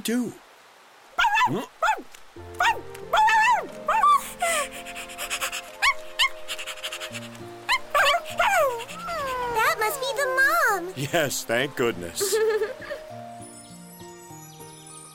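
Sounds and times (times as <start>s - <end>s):
speech: 0.0s - 0.4s, 1.5s - 3.2s, 9.8s - 12.9s
small dog high rising yips and whimpers: 1.2s - 10.2s
laughter: 12.2s - 13.1s.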